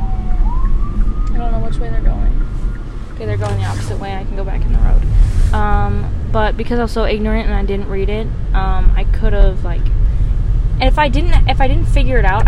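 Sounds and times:
ambulance siren wailing and yelping: 0.0 - 4.3
low rumble of road traffic: 0.0 - 12.4
speech: 3.2 - 10.0, 10.8 - 12.4.

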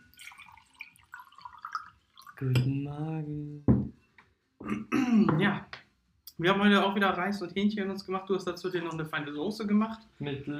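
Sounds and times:
water pouring into a glass: 0.0 - 2.6
speech: 2.4 - 3.7, 4.7 - 5.7, 6.4 - 10.5.

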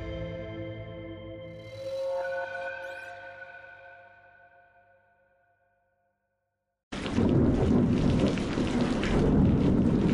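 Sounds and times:
drawn-out musical tone: 0.0 - 5.7
loud steady thunderstorm rain: 6.9 - 10.1
deep rumbling roar of thunder: 7.0 - 10.1.

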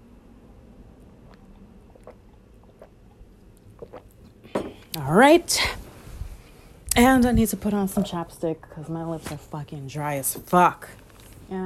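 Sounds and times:
steady low hum: 0.0 - 11.6
person sipping water: 1.0 - 5.0
swallowing: 1.0 - 5.0
soft wet mouth clicks: 1.2 - 4.4
speech: 5.0 - 5.8, 7.0 - 11.6.

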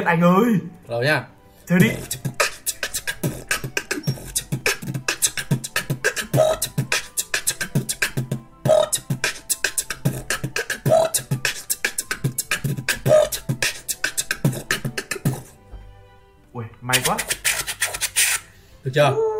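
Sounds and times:
speech: 0.0 - 2.3, 18.9 - 19.3
beatboxing into a microphone mimicking a drum kit: 1.8 - 15.6, 17.0 - 18.4.

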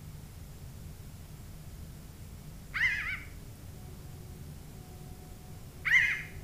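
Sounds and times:
low hum: 0.0 - 6.4
Pinyon Jay calling: 2.7 - 3.4, 5.8 - 6.4.

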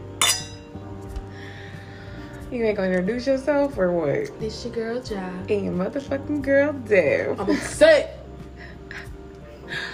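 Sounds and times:
champagne glasses clinking in a toast: 0.2 - 0.8
speech: 2.5 - 8.2.

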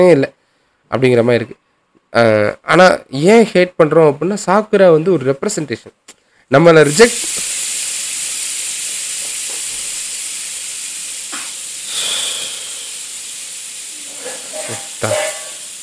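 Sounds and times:
speech: 0.0 - 7.5, 14.7 - 15.2
pressure cooker whistle: 6.8 - 15.8
steam hissing from a pressure cooker: 6.8 - 15.8.

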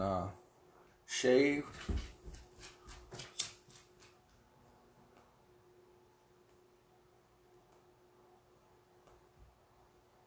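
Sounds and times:
speech: 1.1 - 2.1
dog running around with soft thumps and scuffles: 1.6 - 4.5.

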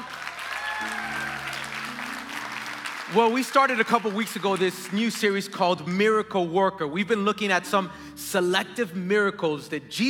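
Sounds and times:
large church audience applauding: 0.0 - 5.6
sustained keyboard chords: 0.8 - 10.0
speech: 3.1 - 10.0.

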